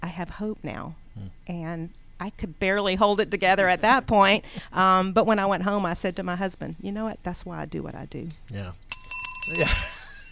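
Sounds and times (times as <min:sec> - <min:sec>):
speech: 0:00.2 - 0:08.9, 0:09.5 - 0:10.0
bright bell struck rapidly as a show sound effect: 0:08.9 - 0:10.0.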